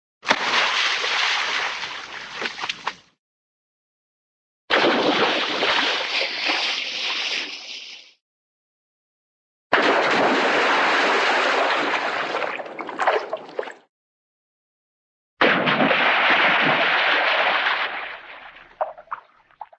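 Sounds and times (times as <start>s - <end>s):
medium cartoon water splash: 0.2s - 1.8s, 4.7s - 8.2s, 9.7s - 13.6s, 15.4s - 19.3s.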